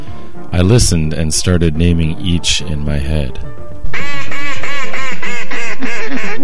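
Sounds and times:
speech: 0:00.6 - 0:04.1, 0:05.8 - 0:06.4
mallard duck quacking harsh nasal calls: 0:03.9 - 0:06.4.

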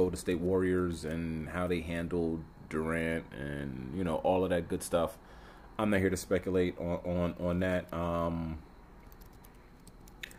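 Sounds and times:
speech: 0:00.0 - 0:08.7
faint room hum: 0:00.0 - 0:10.3
typing on a computer keyboard: 0:09.0 - 0:10.3.

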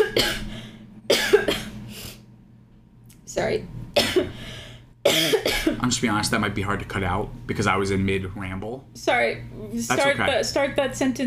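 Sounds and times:
person coughing in abrupt bursts: 0:00.0 - 0:00.5, 0:01.1 - 0:01.8, 0:04.0 - 0:04.4, 0:05.0 - 0:05.9
speech: 0:00.2 - 0:00.5, 0:03.4 - 0:04.4, 0:05.0 - 0:11.2
person clearing throat roughly: 0:01.1 - 0:01.8, 0:04.0 - 0:04.4, 0:05.1 - 0:05.8.

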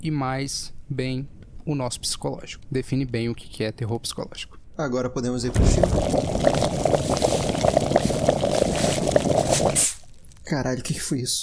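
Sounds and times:
speech: 0:00.0 - 0:07.2, 0:10.5 - 0:11.4
water boiling in a kettle: 0:05.7 - 0:10.1.

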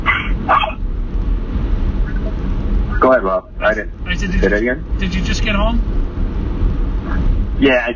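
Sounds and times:
teacup Yorkie barking: 0:00.0 - 0:00.8
low rumble: 0:00.0 - 0:07.9
speech: 0:03.1 - 0:06.0, 0:07.6 - 0:07.9.

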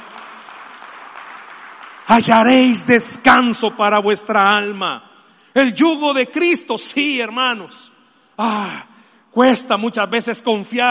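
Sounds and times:
large group applauding: 0:00.0 - 0:02.8
speech: 0:02.1 - 0:10.8.

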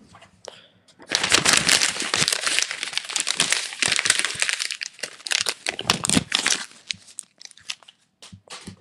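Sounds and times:
paper being crinkled and crumpled: 0:01.1 - 0:08.0.

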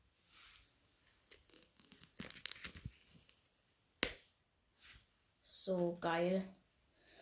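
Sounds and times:
protective plastic film being peeled off a headband: 0:01.0 - 0:03.4
speech: 0:05.7 - 0:06.6.

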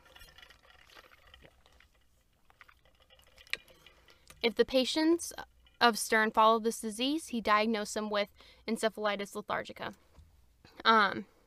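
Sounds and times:
water trickling and splashing as a person pours it: 0:00.0 - 0:06.7
speech: 0:04.4 - 0:10.0, 0:10.8 - 0:11.3.

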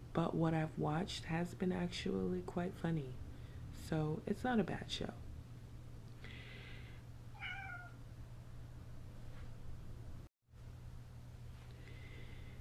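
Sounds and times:
steady low hum and hiss: 0:00.0 - 0:12.6
speech: 0:00.2 - 0:03.2, 0:03.8 - 0:05.2
cat meowing: 0:07.3 - 0:08.0.

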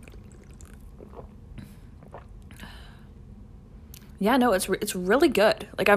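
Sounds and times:
sipping a non-carbonated peach mango green tea: 0:00.0 - 0:02.8
swallow: 0:00.0 - 0:02.8
speech: 0:04.2 - 0:05.9.

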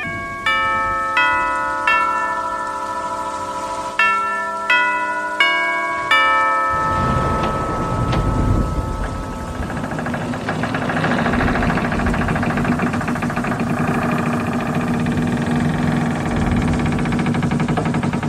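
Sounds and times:
bell struck and ringing: 0:00.0 - 0:10.4
rain: 0:00.0 - 0:18.2.

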